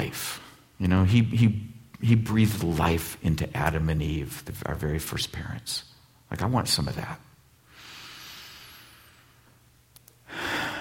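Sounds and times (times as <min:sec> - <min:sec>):
speech: 0:00.8 - 0:07.3
deep breathing in and exhaling: 0:07.7 - 0:09.6, 0:10.2 - 0:10.7.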